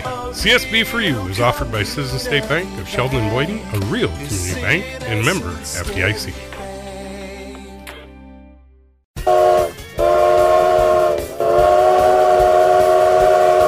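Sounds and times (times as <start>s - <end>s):
speech: 0.4s - 6.6s
train whistle: 9.2s - 13.6s.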